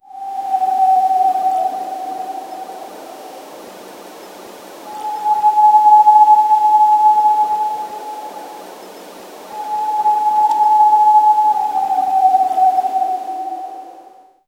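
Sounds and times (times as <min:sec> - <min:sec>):
calm forest ambiance: 0:00.0 - 0:14.4.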